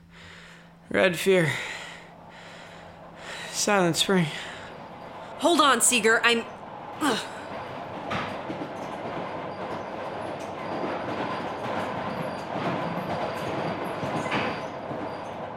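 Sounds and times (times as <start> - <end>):
speech: 0.9 - 1.7, 3.6 - 4.5, 5.4 - 7.4
train cars rattling on tracks heard from an open cattle car: 2.4 - 15.5.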